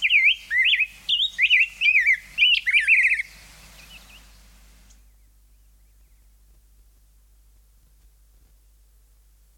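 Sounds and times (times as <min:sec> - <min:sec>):
Rose-breasted grosbeak song: 0:00.0 - 0:06.4.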